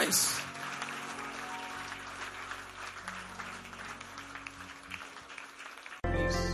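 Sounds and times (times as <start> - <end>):
audience clapping in praise: 0.0 - 6.5
speech: 0.1 - 0.4.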